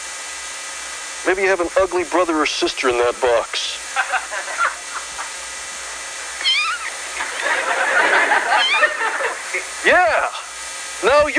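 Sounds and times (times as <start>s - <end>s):
steady hissing noise: 0.0s - 11.3s
speech: 1.2s - 4.8s, 8.5s - 11.3s
laughter: 3.8s - 5.4s, 7.1s - 9.8s
cat meowing: 6.4s - 7.0s, 8.6s - 8.9s.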